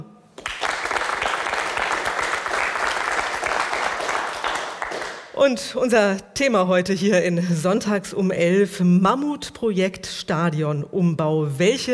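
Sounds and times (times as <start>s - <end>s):
studio audience applauding at a live broadcast in Nuremberg, Germany: 0.4s - 5.4s
speech: 5.4s - 11.9s.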